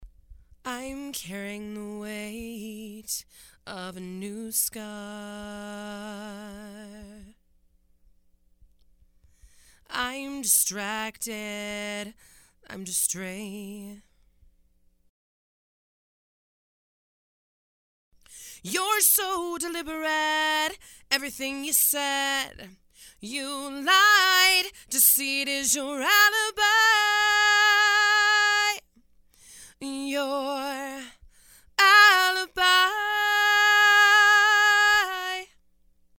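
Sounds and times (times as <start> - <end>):
female vocals: 0.7 - 7.4, 9.8 - 14.1, 18.4 - 28.9, 29.7 - 35.6.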